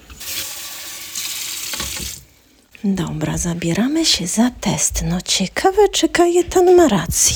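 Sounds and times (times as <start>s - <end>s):
cold water running from a kitchen tap: 0.0s - 2.4s
speech: 2.8s - 7.3s.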